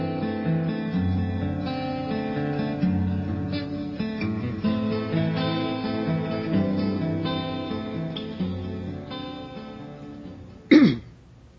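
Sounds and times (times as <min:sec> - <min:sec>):
sustained choral music: 0:00.1 - 0:10.7
loud raspy throat clearing: 0:10.7 - 0:11.2.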